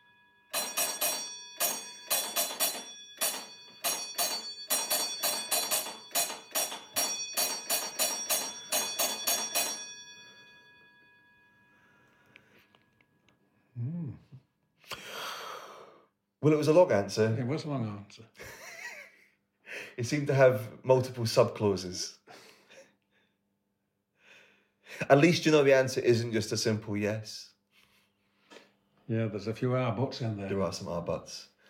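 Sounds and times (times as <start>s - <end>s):
signal bell ringing: 0.0s - 12.6s
brief breathy sound: 11.7s - 12.9s, 13.5s - 16.1s
speech: 16.4s - 18.4s, 20.0s - 22.2s, 25.1s - 27.5s, 29.1s - 31.5s.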